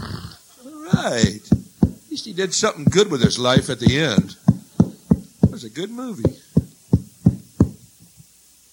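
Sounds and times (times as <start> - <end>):
firm knocking on a door: 0.9 - 2.0, 2.9 - 5.6, 6.3 - 7.8
speech: 1.0 - 1.7, 2.2 - 4.4, 5.7 - 6.4.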